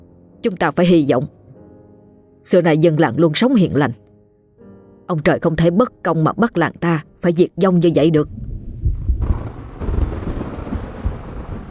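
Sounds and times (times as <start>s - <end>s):
speech: 0.4s - 1.4s, 2.4s - 4.0s, 5.1s - 8.5s
low rolling thunder rumbling: 8.2s - 11.7s
gusty wind noise: 8.3s - 11.7s
soft broadband hiss of rainfall: 9.2s - 11.7s.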